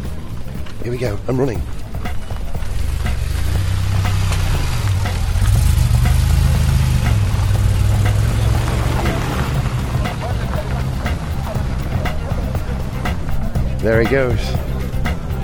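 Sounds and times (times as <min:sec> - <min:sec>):
road and wind noise: 0:00.0 - 0:15.4
speech: 0:00.8 - 0:01.8, 0:13.8 - 0:14.7
DeLorean DMC-12 engine driving past: 0:01.7 - 0:13.8.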